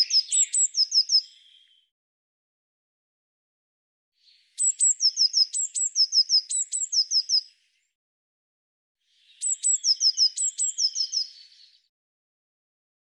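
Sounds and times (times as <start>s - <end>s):
Eurasian blue tit calling: 0.0s - 1.8s, 4.3s - 7.5s, 9.2s - 11.8s.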